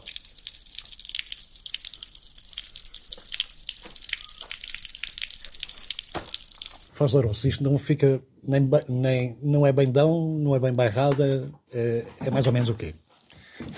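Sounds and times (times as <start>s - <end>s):
water flowing beneath a winery cellar in Portugal: 0.0s - 6.9s
speech: 7.0s - 13.0s.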